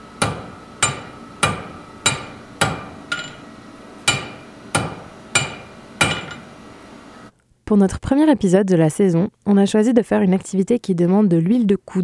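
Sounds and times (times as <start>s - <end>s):
hammer striking metal while forging a knife at a forge in Montreal: 0.0s - 6.8s
speech: 7.7s - 12.0s.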